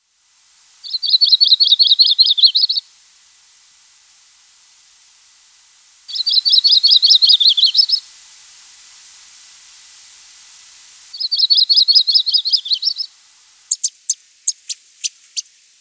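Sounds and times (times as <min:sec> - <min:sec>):
yellow-rumped warbler: 0:00.8 - 0:02.8, 0:06.1 - 0:08.0, 0:11.2 - 0:13.1, 0:13.7 - 0:14.8.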